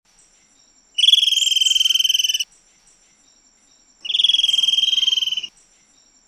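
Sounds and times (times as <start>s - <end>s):
sapayoa bird calling: 1.0s - 2.5s, 4.0s - 5.5s.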